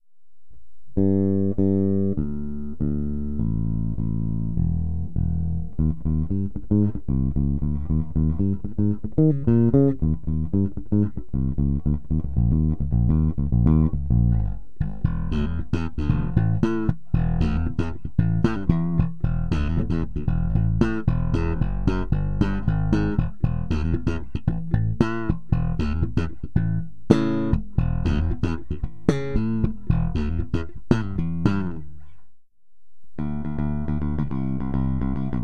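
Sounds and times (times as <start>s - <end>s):
pure nickel guitar strings: 1.0s - 32.2s, 33.2s - 35.4s.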